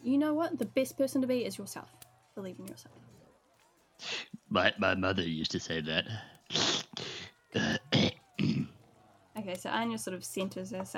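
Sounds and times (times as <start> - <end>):
speech: 0.2 - 3.2, 4.0 - 6.7, 9.5 - 10.9
woman clearing her throat to deepen her voice: 7.6 - 8.7.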